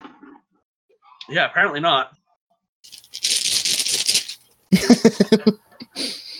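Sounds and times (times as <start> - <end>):
speech: 1.3 - 2.2, 4.8 - 6.1
dice rattling and clattering: 2.9 - 4.4
laughter: 4.7 - 6.1.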